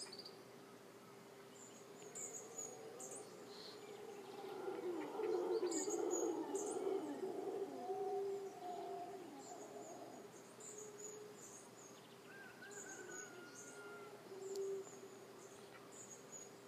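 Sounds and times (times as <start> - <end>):
howler monkey roaring and moaning: 2.4 - 10.4.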